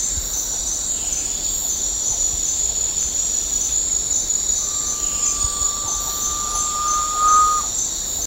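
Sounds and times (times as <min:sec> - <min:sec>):
steady high-pitched buzzing insect chorus at Danum: 0:02.9 - 0:08.2
garnet pitta long pure whistle at Danum: 0:03.6 - 0:08.2.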